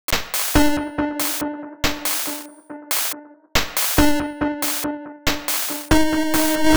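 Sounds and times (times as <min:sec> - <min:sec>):
140 BPM effects loop in D sharp: 0:00.0 - 0:06.7.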